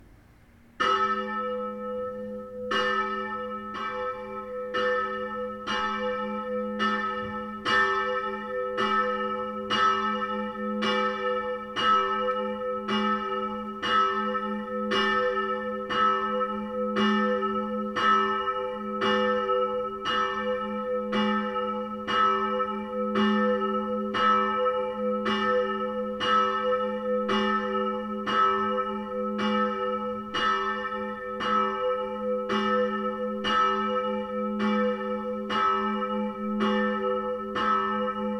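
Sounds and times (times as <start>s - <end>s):
church bells of St. Mariae Geburt ringing: 0.8s - 38.3s.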